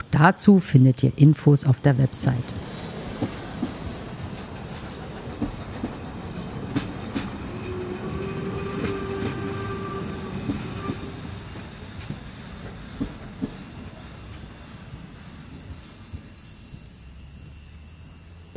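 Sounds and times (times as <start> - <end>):
speech: 0.2 - 2.7
steam train at full steam rolling along rails from Putbus to Göhren: 1.4 - 18.5
sustained high squealing tone: 6.0 - 12.1.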